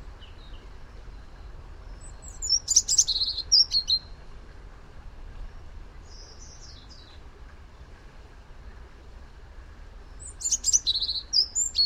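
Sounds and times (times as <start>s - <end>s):
European robin Erithacus rubecula singing high twittering notes: 0.0s - 4.3s, 5.9s - 7.2s, 10.0s - 11.8s
low background hiss: 0.0s - 11.8s.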